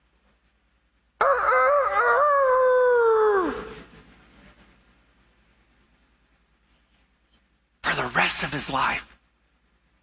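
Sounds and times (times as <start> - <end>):
rooster crowing: 1.2 - 3.8
speech: 8.6 - 9.2.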